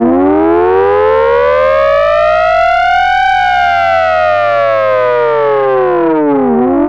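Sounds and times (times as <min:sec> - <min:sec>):
civil defense mechanical siren: 0:00.0 - 0:06.8.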